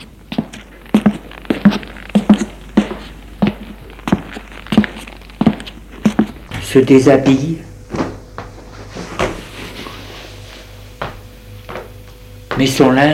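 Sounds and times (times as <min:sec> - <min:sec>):
footsteps of a woman quietly climbing up to her room: 0:00.0 - 0:10.0, 0:10.9 - 0:13.0
speech: 0:06.8 - 0:07.7, 0:12.6 - 0:13.1.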